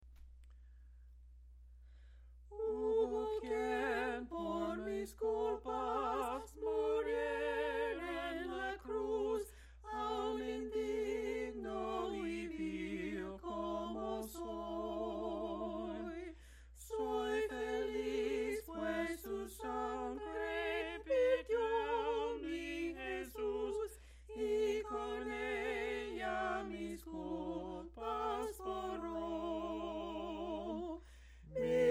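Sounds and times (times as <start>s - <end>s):
a cappella hymn singing: 2.5s - 31.8s.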